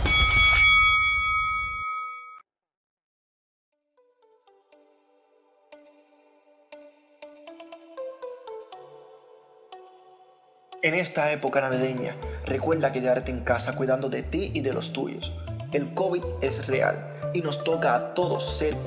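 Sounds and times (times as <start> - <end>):
light tinkling melody of chime-like notes: 0.0 - 2.4
loud bell ringing: 0.0 - 2.4
speech: 10.8 - 18.8.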